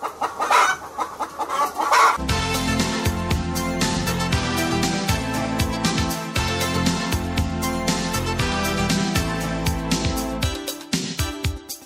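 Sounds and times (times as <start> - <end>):
hens clucking and squawking: 0.0 - 2.2
loud bass-heavy dance track: 2.2 - 11.7.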